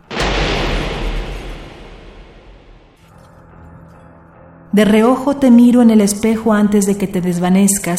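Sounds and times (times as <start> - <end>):
gunshot: 0.0 - 3.1
long rumbling echo of a gunshot: 0.0 - 3.1
speech: 4.8 - 7.9.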